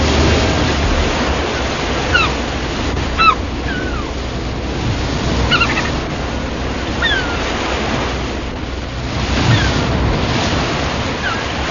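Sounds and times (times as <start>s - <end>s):
steady roaring surf: 0.0s - 11.6s
gull calls: 1.4s - 2.5s, 3.1s - 4.2s, 5.4s - 6.1s, 6.8s - 7.6s, 9.4s - 9.8s, 11.2s - 11.6s.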